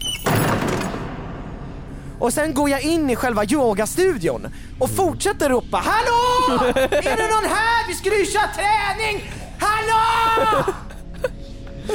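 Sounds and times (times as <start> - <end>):
door slamming shut: 0.0 - 1.6
speech: 2.2 - 10.8
laughter: 6.3 - 7.6, 10.4 - 11.9.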